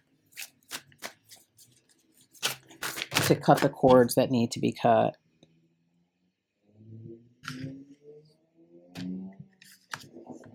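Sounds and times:
tarot card deck being shuffled: 0.3 - 4.0
speech: 3.3 - 5.2.

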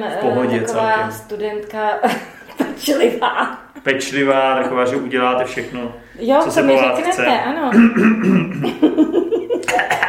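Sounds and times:
speech: 0.0 - 10.0
laughter: 2.0 - 5.9, 7.6 - 10.0
person in a coughing fit: 7.7 - 8.8, 9.7 - 10.0.

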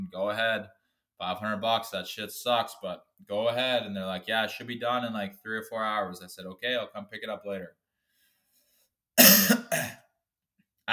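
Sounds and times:
speech: 0.1 - 7.8, 9.3 - 10.0
harsh cough: 9.2 - 10.0.

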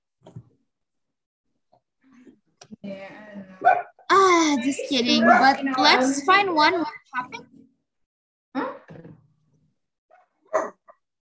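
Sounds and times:
dog barking: 3.6 - 4.0, 10.1 - 10.9
speech: 4.5 - 7.5.

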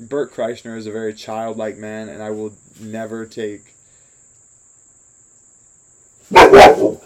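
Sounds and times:
speech: 0.0 - 3.8
dog barking: 6.3 - 7.0.

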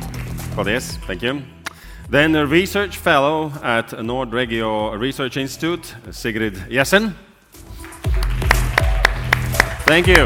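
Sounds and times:
speech: 0.6 - 7.3, 9.9 - 10.2
audience applause: 7.7 - 10.2
sharp claps: 7.8 - 10.2.

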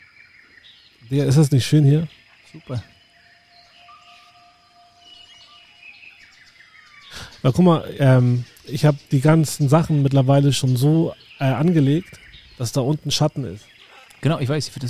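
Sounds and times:
faint bird chirps outdoors: 0.0 - 14.8
speech: 1.1 - 2.9, 7.4 - 14.8.

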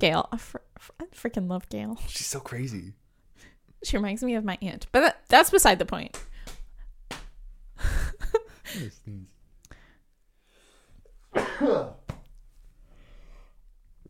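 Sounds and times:
speech: 0.0 - 3.0, 3.8 - 6.3, 7.8 - 9.3, 11.4 - 12.0
laughter: 8.0 - 9.3
sneeze imitated by a person's voice: 11.4 - 12.0.

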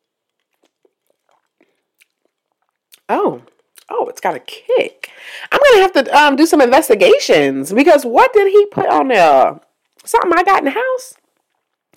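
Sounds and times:
person crunchy chewing and biting while tasting spicy food: 0.0 - 3.8
speech: 4.1 - 11.2.

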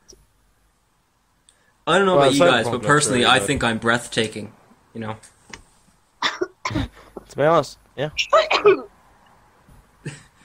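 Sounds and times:
speech: 1.9 - 5.4, 6.7 - 8.8
severe harsh coughing: 6.2 - 7.2, 8.3 - 8.9.

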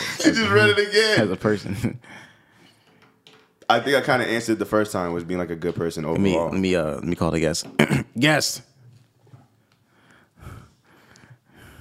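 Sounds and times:
speech: 0.2 - 2.2, 3.7 - 8.7
man breathing heavily with loud noisy inhales and exhales: 9.8 - 11.7.

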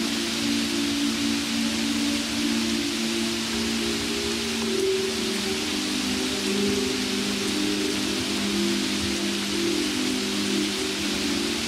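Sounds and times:
calm music with sustained low-middle tones: 0.0 - 11.6
steady soft rain: 0.0 - 11.6.

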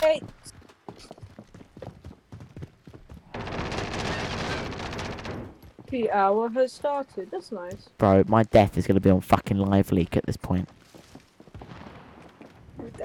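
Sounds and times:
speech: 0.1 - 0.6, 5.9 - 10.8
video game gunfire as a player is shot from behind: 3.3 - 5.6.

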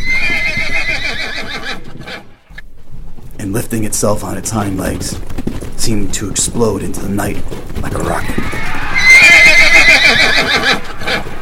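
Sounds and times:
horse shrill whinny: 0.0 - 2.6, 8.0 - 11.4
speech: 3.4 - 8.7.

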